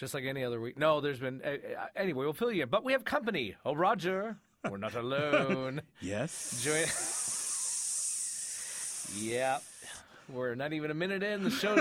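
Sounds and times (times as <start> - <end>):
speech: 0.0 - 7.2, 9.1 - 11.8
steady bright airy hiss: 6.1 - 10.2.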